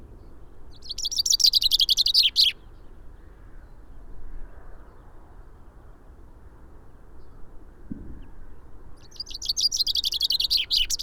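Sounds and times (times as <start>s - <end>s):
common chaffinch Fringilla coelebs singing a descending phrase with flourish: 0.8s - 2.6s, 9.1s - 11.0s.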